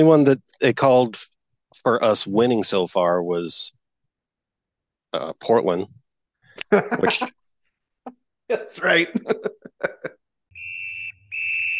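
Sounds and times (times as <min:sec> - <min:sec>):
speech: 0:00.0 - 0:03.8, 0:05.1 - 0:06.0, 0:06.6 - 0:07.4, 0:08.0 - 0:10.0
laughter: 0:06.6 - 0:07.3, 0:09.0 - 0:10.2
referee's halftime whistle at a soccer match: 0:10.6 - 0:11.7.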